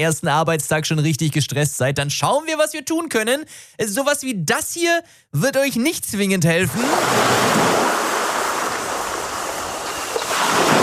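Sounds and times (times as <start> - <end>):
speech: 0.0 - 8.1
ocean surf of breaking waves: 6.8 - 10.8.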